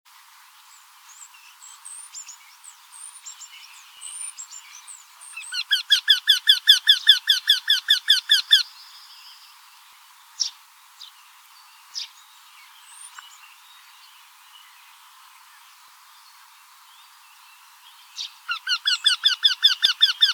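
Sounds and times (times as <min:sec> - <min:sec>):
Eurasian wryneck calling: 0:05.3 - 0:08.7, 0:18.2 - 0:20.3.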